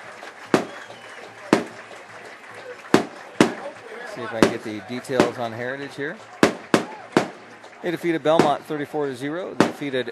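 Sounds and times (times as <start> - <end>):
fireworks bangs at a football stadium: 0.0 - 10.1
steady outdoor murmur: 0.0 - 10.1
speech: 4.2 - 6.3, 7.8 - 10.1.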